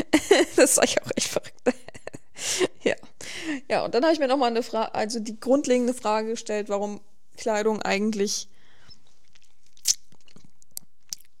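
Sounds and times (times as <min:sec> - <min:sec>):
speech: 0:00.6 - 0:01.8, 0:03.7 - 0:08.6
person crunching and chewing food trying to swallow: 0:09.0 - 0:11.3.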